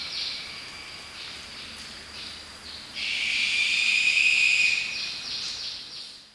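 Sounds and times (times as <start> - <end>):
lesser sooty owl Tyto multipunctata whistle: 3.0 - 5.0.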